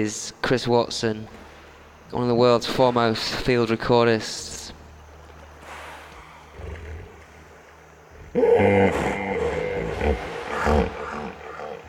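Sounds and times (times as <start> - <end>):
speech: 0.0 - 1.4, 2.1 - 4.6
hippopotami grunting as they rise from a river at dusk: 5.4 - 11.8.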